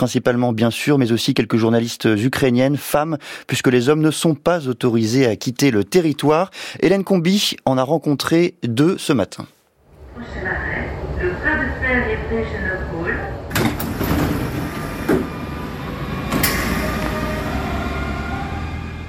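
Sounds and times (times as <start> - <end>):
speech: 0.0 - 9.6, 10.2 - 12.7
RER line D commuter train rumbling at the station in Évry: 10.0 - 19.0
sharp clunks at the commuter train station: 16.3 - 17.2.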